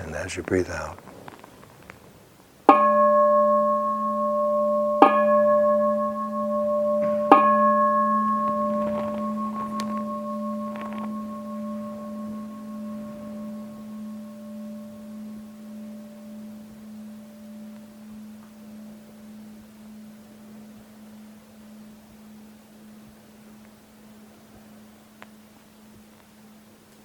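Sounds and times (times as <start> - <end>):
speech: 0.2 - 1.1
meditation bell struck and ringing: 2.7 - 23.0.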